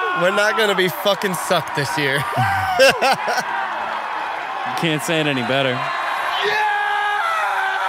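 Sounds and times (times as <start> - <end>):
speech: 0.2 - 3.6, 4.6 - 6.6
laughter: 1.7 - 3.6
Russian man's blood-curdling scream: 2.2 - 3.4, 6.4 - 7.8.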